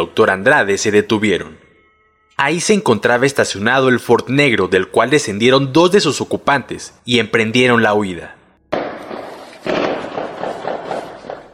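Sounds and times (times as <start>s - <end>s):
speech: 0.1s - 1.6s, 2.4s - 8.4s
loud sharp blast: 8.7s - 11.5s
rapid string of gunshots with tail: 8.7s - 11.5s.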